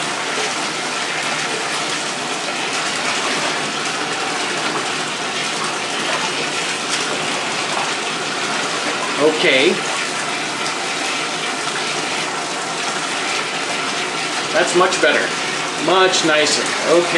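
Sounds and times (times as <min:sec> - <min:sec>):
hot water pouring from a tap into a bathtub: 0:00.0 - 0:17.1
speech: 0:09.3 - 0:09.9, 0:14.6 - 0:17.1.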